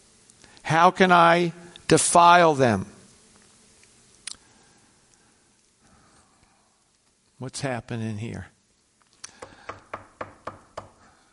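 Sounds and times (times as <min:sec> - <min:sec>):
speech: 0:00.7 - 0:02.9, 0:07.4 - 0:08.5
sharp knocks on a door: 0:09.4 - 0:11.0.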